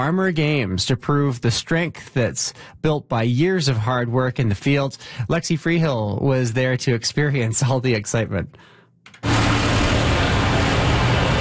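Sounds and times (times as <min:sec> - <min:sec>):
speech: 0:00.0 - 0:09.4
tractor engines rumbling: 0:09.2 - 0:11.3.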